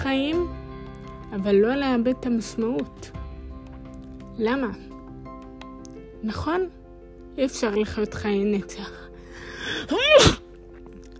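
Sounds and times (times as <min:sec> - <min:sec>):
speech: 0:00.1 - 0:00.6, 0:01.3 - 0:03.2, 0:04.4 - 0:04.9, 0:06.2 - 0:06.8, 0:07.4 - 0:09.0, 0:09.6 - 0:10.4
person sneezing: 0:09.8 - 0:10.6.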